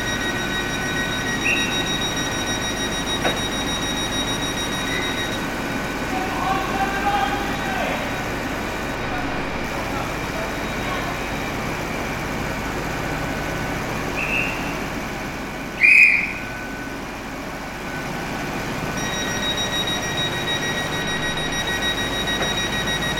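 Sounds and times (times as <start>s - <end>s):
short sharp beep: 0.0s - 5.4s, 19.0s - 23.1s
steady droning hum with faint high whine at a railway station: 0.0s - 23.1s
passengers' voices murmuring indistinctly at a railway station: 6.0s - 11.9s.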